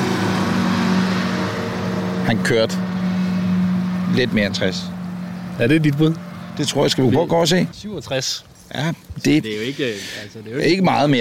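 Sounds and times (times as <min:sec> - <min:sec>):
heavy truck rumbling past: 0:00.0 - 0:09.0
speech: 0:02.3 - 0:03.0, 0:04.1 - 0:05.0, 0:05.6 - 0:11.1.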